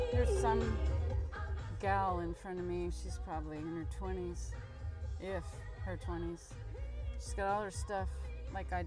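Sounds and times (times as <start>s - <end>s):
saxophone music over a driving beat: 0.2s - 1.0s
speech: 2.1s - 8.8s.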